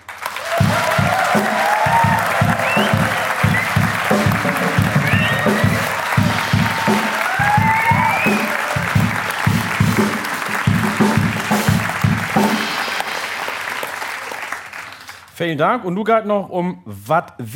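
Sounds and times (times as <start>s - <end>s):
faint audience cheers: 0.0s - 15.2s
audience applause: 0.0s - 15.3s
faint whistles from the audience: 0.6s - 9.7s
speech: 15.4s - 17.5s.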